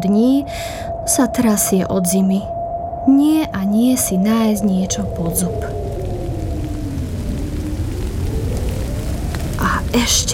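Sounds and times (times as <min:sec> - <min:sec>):
speech: 0:00.0 - 0:05.8, 0:09.9 - 0:10.3
heavy low rumble: 0:00.0 - 0:10.3
steady rain falling: 0:04.0 - 0:10.3.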